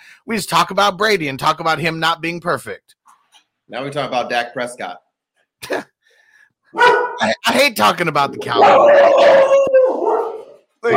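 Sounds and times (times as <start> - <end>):
speech: 0.2 - 2.9, 3.7 - 5.0, 5.6 - 5.9, 6.7 - 9.6
dog barking in a house: 6.8 - 7.2, 8.6 - 10.9.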